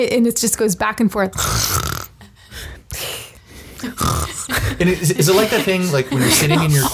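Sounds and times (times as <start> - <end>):
speech: 0.0 - 1.9, 3.8 - 6.9
person vocally imitating loud human snoring: 1.4 - 2.2, 3.8 - 4.5
laughter: 4.3 - 6.9.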